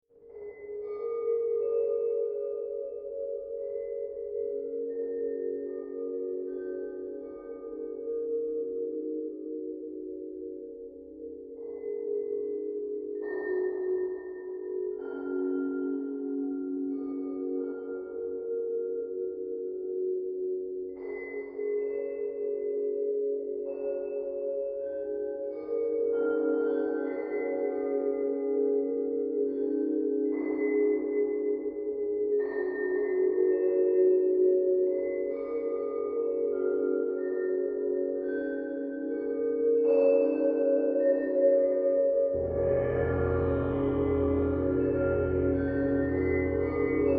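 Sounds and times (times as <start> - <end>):
chimes: 0.2 - 47.1
bells: 0.3 - 47.1
dreamy tonal drone texture: 42.3 - 47.1
gongs: 42.3 - 47.1.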